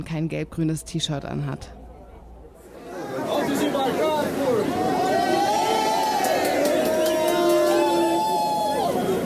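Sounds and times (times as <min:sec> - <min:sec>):
speech: 0:00.0 - 0:01.8
crowd of supporters cheering and chanting in an underground subway station: 0:02.9 - 0:09.2
sustained whoops from a crowd: 0:04.9 - 0:09.2.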